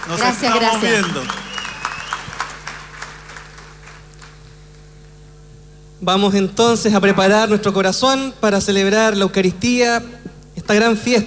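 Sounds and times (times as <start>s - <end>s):
speech: 0.0s - 1.4s, 6.0s - 11.2s
light scattered audience applause: 0.0s - 4.5s
low hum: 0.0s - 11.2s.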